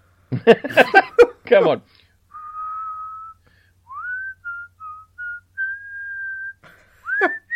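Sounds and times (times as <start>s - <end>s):
speech: 0.3s - 2.0s
person whistling a Christmas song tune: 2.3s - 7.5s.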